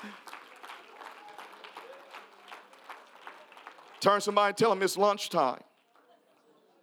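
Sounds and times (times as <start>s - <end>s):
speech: 0.0s - 0.2s, 4.0s - 5.7s
church audience clapping hands: 0.0s - 4.9s.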